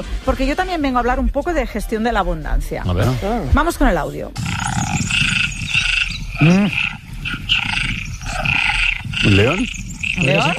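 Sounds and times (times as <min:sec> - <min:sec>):
speech: 0:00.0 - 0:04.5, 0:06.4 - 0:07.0, 0:09.3 - 0:10.5
tree frogs croaking in chorus: 0:04.4 - 0:10.5.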